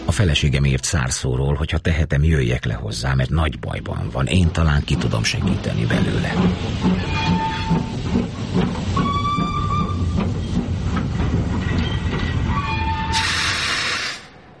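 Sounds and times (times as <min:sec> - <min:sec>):
speech: 0:00.2 - 0:08.2
train rolling on rails: 0:02.2 - 0:14.5
thin metallic train wheel squeals: 0:06.9 - 0:08.2, 0:08.9 - 0:10.6, 0:11.6 - 0:14.4
burst of hissing air from a train: 0:13.1 - 0:14.4.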